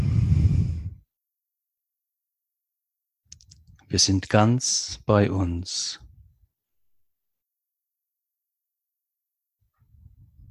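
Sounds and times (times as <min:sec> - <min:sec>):
deep audible breath at the start of a meditation: 0:00.0 - 0:01.0
speech: 0:03.9 - 0:06.0.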